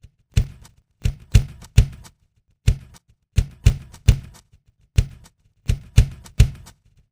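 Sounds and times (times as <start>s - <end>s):
drum: 0.4s - 2.1s, 2.7s - 4.4s, 5.0s - 6.7s.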